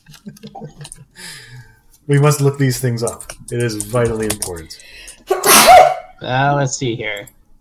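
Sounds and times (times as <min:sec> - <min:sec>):
laughter: 0:00.0 - 0:01.2
speech: 0:02.1 - 0:05.0, 0:05.6 - 0:07.4
person sneezing: 0:05.3 - 0:06.1.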